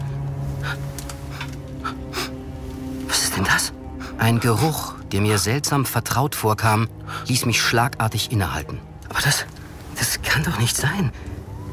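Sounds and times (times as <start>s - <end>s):
person panting heavily in a room: 0.5s - 2.5s
speech: 3.4s - 11.3s.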